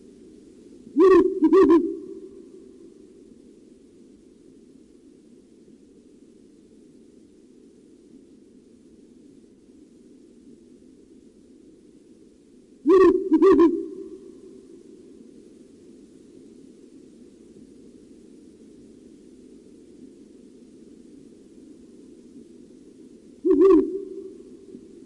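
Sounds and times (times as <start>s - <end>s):
faint background noise: 0.0s - 25.0s
Ural owl giving deep hollow hoots: 1.0s - 3.0s, 12.8s - 14.9s, 23.4s - 25.0s.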